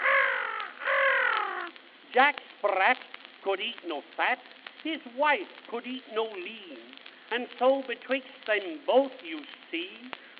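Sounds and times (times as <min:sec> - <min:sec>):
crow cawing: 0:00.0 - 0:01.8
speech: 0:02.2 - 0:10.3.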